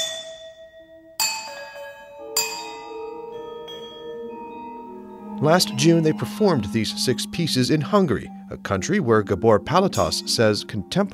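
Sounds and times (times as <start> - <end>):
electronically processed Indian bells ringing: 0.0 - 11.1
electronically processed Indian percussion: 1.2 - 7.8
speech: 5.4 - 11.1.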